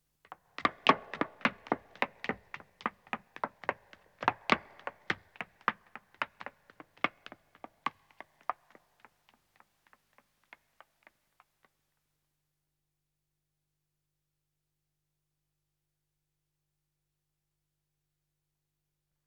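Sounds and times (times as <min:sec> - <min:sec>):
woman running on stone: 0:00.4 - 0:11.5.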